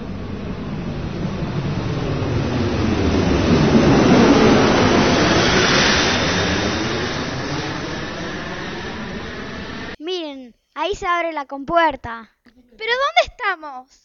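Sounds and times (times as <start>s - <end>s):
airplane landing: 0.0s - 10.0s
speech: 10.9s - 14.0s.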